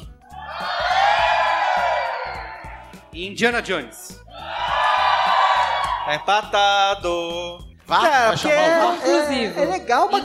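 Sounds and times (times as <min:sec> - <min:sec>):
live audience cheering and whooping as it votes: 0:00.2 - 0:03.0, 0:04.3 - 0:06.3
speech: 0:03.2 - 0:04.2, 0:06.1 - 0:10.2.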